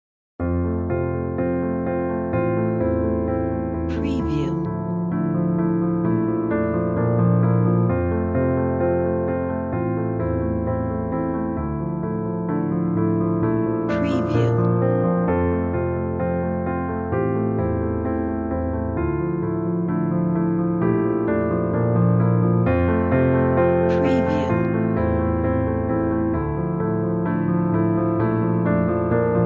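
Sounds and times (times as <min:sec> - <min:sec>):
lovely piano ballad: 0:00.4 - 0:29.4.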